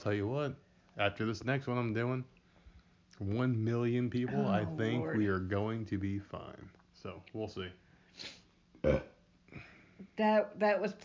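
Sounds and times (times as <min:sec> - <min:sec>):
speech: 0:00.0 - 0:02.4, 0:03.2 - 0:11.0
short burps: 0:08.8 - 0:09.2.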